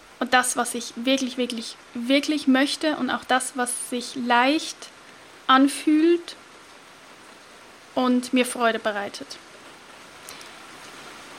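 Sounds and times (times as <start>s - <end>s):
heavy rain: 0.0s - 11.3s
speech: 0.2s - 4.9s, 5.5s - 6.4s, 8.0s - 9.5s.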